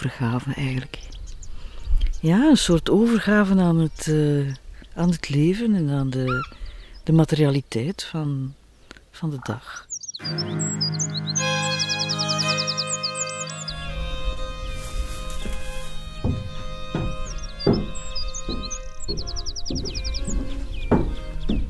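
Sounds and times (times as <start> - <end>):
speech: 0.0 - 1.2, 2.2 - 8.6, 9.2 - 10.9
scattered bird chirps in the open air: 0.7 - 2.3, 5.8 - 21.6
common redshank alarm calls at a bird hide in the Uitkijkse polder: 6.0 - 7.1, 9.7 - 21.6.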